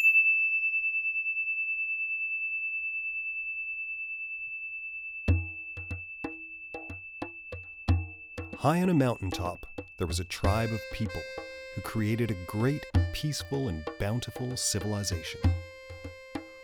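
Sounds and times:
single high bell tone rung to signal the start of a story: 0:00.0 - 0:11.7
speech: 0:08.6 - 0:15.7.

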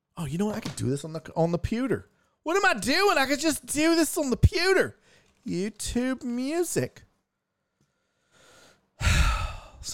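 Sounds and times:
speech: 0:00.2 - 0:07.1
heavy breathing into a microphone: 0:07.9 - 0:09.8.

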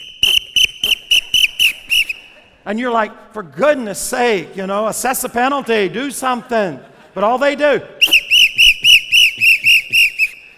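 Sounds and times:
short loud whistle blasts: 0:00.0 - 0:02.4, 0:08.0 - 0:10.5
speech: 0:02.6 - 0:08.0.

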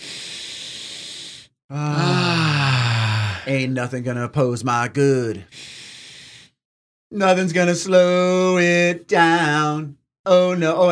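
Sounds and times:
deep breath in: 0:00.0 - 0:01.5, 0:02.3 - 0:03.5, 0:05.5 - 0:06.6
loud voiced groaning exhale: 0:00.0 - 0:03.5
speech: 0:01.7 - 0:02.2, 0:03.5 - 0:05.7, 0:07.1 - 0:10.9.

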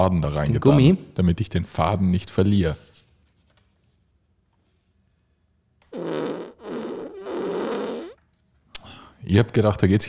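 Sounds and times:
speech: 0:00.0 - 0:02.9, 0:09.3 - 0:10.0
raspy buzzing fart sound effect: 0:05.9 - 0:08.2.

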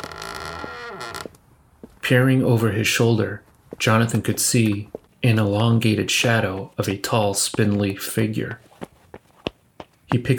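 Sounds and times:
door creaking open: 0:00.0 - 0:01.4
speech: 0:02.1 - 0:08.7, 0:10.1 - 0:10.3.

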